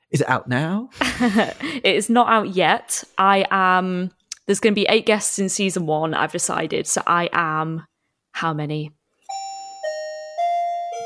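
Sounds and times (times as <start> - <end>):
speech: 0.1 - 9.0
electronic doorbell chiming: 9.2 - 11.0.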